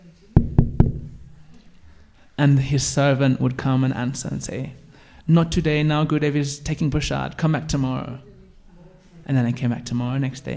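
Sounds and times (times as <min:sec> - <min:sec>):
firm knocks on a wooden door: 0:00.4 - 0:01.3
speech: 0:02.4 - 0:08.3, 0:09.3 - 0:10.5.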